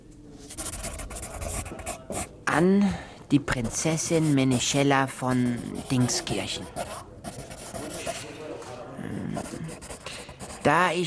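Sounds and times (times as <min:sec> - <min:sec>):
quill pen dipped in ink writing on paper: 0:00.5 - 0:02.3, 0:03.5 - 0:08.3, 0:09.4 - 0:10.8
speech: 0:02.6 - 0:06.9, 0:10.6 - 0:11.0.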